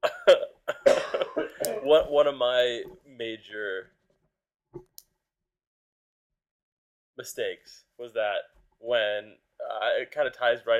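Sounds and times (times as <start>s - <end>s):
hoarse rattling coughing fit: 0.0s - 2.0s
speech: 1.9s - 4.0s, 7.2s - 10.7s.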